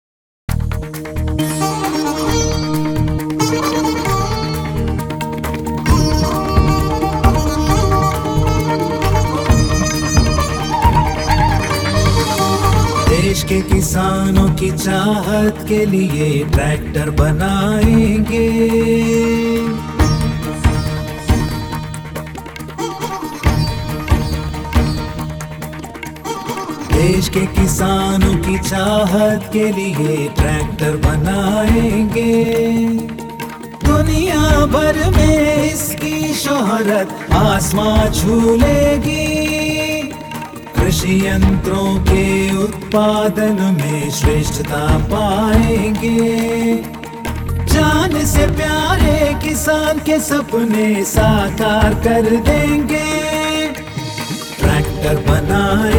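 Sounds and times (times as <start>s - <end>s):
anthem: 1.4s - 55.9s.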